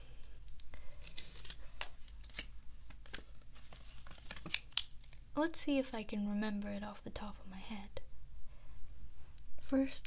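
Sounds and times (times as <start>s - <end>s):
paper rustling and crinkling as the sheet is shuffled: 0.8s - 5.2s
speech: 5.4s - 8.0s, 9.7s - 10.0s.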